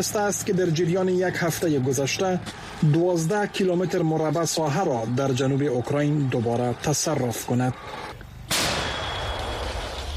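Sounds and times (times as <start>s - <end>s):
speech: 0.0s - 8.1s
low hum: 8.0s - 10.1s
Italian-made artillery gun of a Ukrainian unit firing in the Donbas region of eastern Ukraine: 8.5s - 10.1s.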